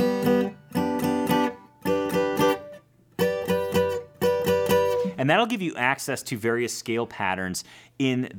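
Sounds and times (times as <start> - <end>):
electric or acoustic guitar chord shapes picked along the neck: 0.0 - 5.2
speech: 5.2 - 8.3.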